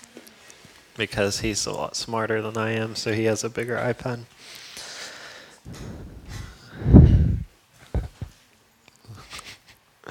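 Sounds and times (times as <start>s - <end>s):
speech: 1.0s - 4.6s
heavy breathing through the nose: 4.4s - 8.3s.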